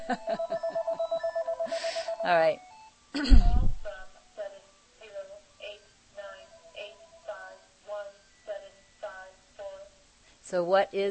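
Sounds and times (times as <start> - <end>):
telephone ringing with a rapid electronic trill: 0.0 - 2.9, 6.2 - 7.6
speech: 0.1 - 0.4, 2.2 - 3.5, 10.5 - 11.0.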